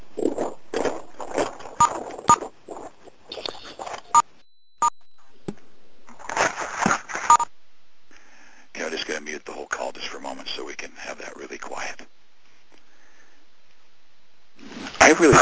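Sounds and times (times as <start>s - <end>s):
rustling, clattering noise: 0.0s - 4.2s, 5.3s - 7.4s
phone keypad tones as callers on a conference line press star six: 7.3s - 7.5s
speech: 15.2s - 15.4s.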